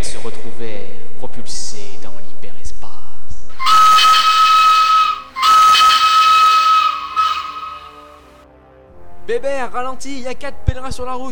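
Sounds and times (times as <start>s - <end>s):
loud shrill steam locomotive whistle: 3.5s - 8.4s
speech: 9.4s - 11.3s.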